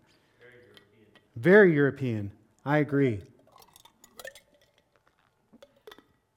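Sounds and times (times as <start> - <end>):
speech: 1.4 - 3.3
ice cubes clinking inside a water bottle: 3.4 - 6.3.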